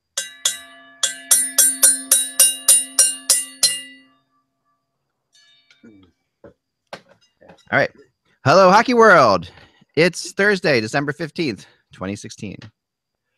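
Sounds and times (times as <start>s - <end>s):
small bell struck without its hammer: 0.0s - 4.4s
speech: 7.7s - 12.8s.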